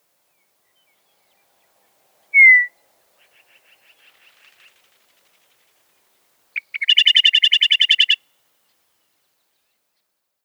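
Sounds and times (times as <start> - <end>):
meadowlark chatter with harsh buzzy notes: 2.4 - 2.7, 6.6 - 8.2.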